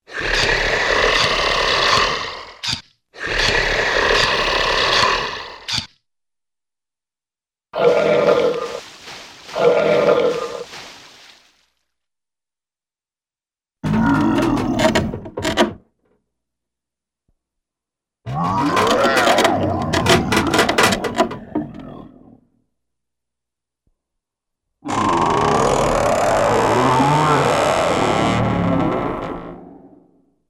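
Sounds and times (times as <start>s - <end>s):
cartoon throaty growls: 0.0s - 5.7s, 13.8s - 15.3s, 18.3s - 22.6s, 24.8s - 30.2s
cartoon footsteps: 8.3s - 11.7s.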